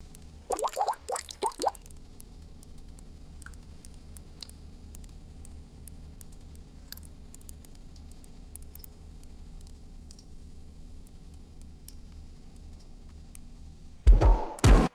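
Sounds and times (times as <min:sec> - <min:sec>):
single liquid mud drips with varying pitches: 0:00.5 - 0:02.8, 0:03.4 - 0:09.0.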